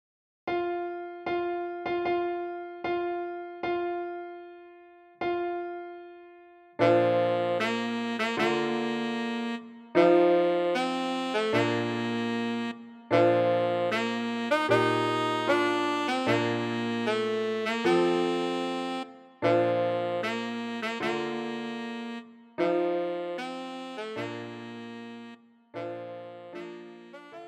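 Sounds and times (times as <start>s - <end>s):
piano: 0.5s - 27.4s
tenor saxophone: 6.8s - 27.4s.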